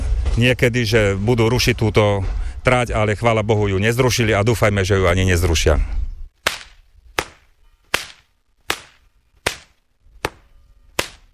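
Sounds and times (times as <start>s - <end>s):
speech: 0.4s - 6.0s
whip cracking: 6.4s - 11.3s.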